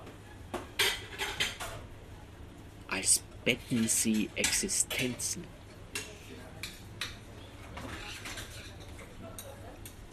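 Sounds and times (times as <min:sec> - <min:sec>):
utensils and dishes clattering as cooks cut and lay out food in a kitchen: 0:00.8 - 0:01.8, 0:03.7 - 0:05.3, 0:06.0 - 0:10.0
speech: 0:03.0 - 0:05.6.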